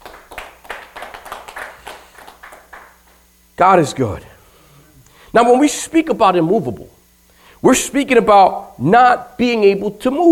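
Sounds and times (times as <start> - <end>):
room full of people clapping hands: 0.0 - 3.3
speech: 3.6 - 4.3, 5.3 - 7.0, 7.6 - 10.3.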